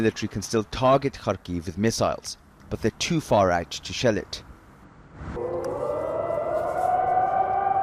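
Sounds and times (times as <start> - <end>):
speech: 0.0 - 4.5
air raid siren wailing: 5.3 - 7.8.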